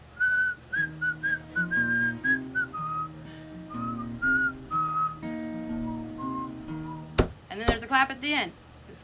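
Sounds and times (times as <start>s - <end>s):
person whistling a lively tune: 0.2s - 7.1s
speech: 7.6s - 9.0s.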